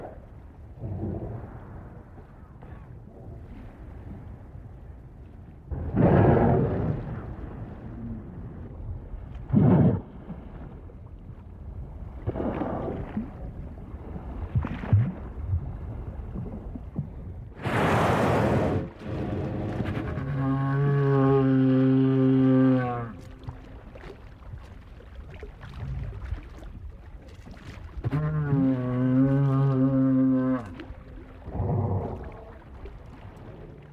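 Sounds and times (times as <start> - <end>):
murky underwater drone: 0.0 - 33.9
right whale long tonal moan: 19.5 - 23.7, 28.0 - 33.9.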